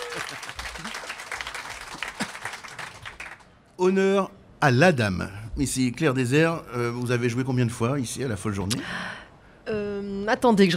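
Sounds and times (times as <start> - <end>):
audience applause: 0.0 - 3.5
speech: 0.2 - 1.0, 3.8 - 10.7.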